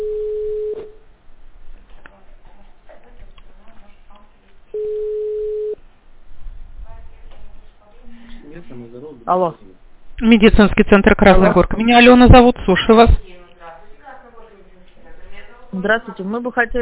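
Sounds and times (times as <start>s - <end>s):
telephone ringback tone on a call being connected to a medical centre: 0.0s - 1.0s, 4.7s - 5.8s
speech: 9.3s - 13.3s, 15.8s - 16.7s.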